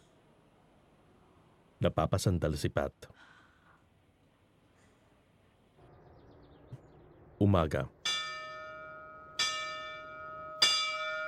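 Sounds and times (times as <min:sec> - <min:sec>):
speech: 0:01.8 - 0:03.3, 0:07.6 - 0:08.0
church bell ringing: 0:08.0 - 0:11.2.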